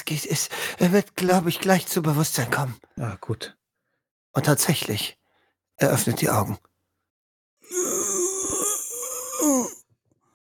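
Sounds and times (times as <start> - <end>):
speech: 0.1 - 3.6, 4.4 - 5.2, 5.8 - 6.7, 9.4 - 9.8
wounded man groaning: 7.7 - 9.8.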